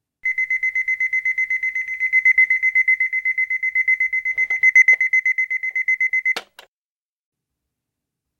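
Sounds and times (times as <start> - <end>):
alarm clock beeping: 0.2 - 6.4.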